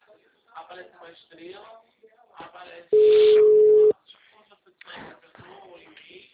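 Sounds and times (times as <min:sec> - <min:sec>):
speech: 0:00.7 - 0:03.7
telephone busy tone after a dropped call: 0:03.0 - 0:03.9.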